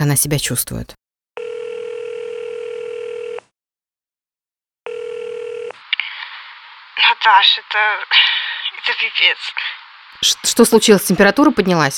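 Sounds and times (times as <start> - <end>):
speech: 0.0 - 1.0, 7.2 - 8.2, 8.8 - 11.9
telephone dial tone: 1.4 - 3.5, 4.9 - 5.8.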